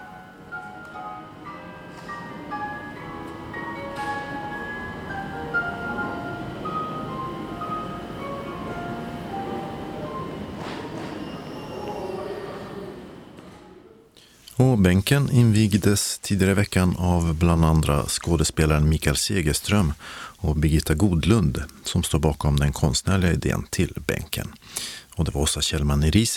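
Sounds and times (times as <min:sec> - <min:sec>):
ambient murmur inside a large railway station building: 0:00.0 - 0:14.7
speech: 0:14.6 - 0:26.3.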